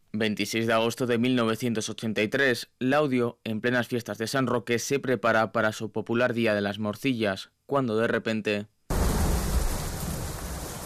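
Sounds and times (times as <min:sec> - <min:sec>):
speech: 0:00.2 - 0:08.8
intense heavy rain in Laudio: 0:08.9 - 0:10.8.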